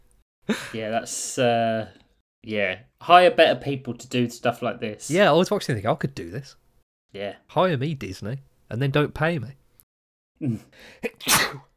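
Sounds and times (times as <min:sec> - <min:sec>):
speech: 0:00.5 - 0:09.6, 0:10.4 - 0:11.7
loud sneeze: 0:11.1 - 0:11.7.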